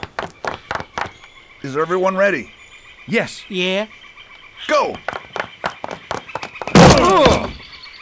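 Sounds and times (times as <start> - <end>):
speech: 1.6 - 4.0, 4.6 - 5.2
heavy table rammed by several men against a wooden door: 6.7 - 7.6.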